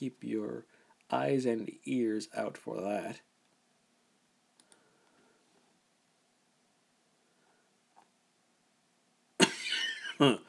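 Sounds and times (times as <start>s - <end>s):
speech: 0.0s - 3.3s, 10.2s - 10.4s
person coughing harshly: 9.4s - 10.4s.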